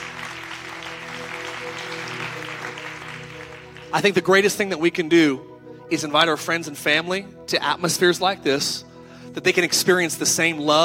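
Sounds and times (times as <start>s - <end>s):
large audience applause: 0.0s - 4.3s
speech: 3.9s - 10.8s.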